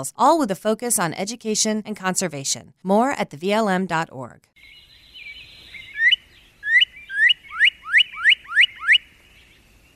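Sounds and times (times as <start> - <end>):
speech: 0.0 - 4.8
northern cardinal singing slurred whistles: 4.6 - 9.9.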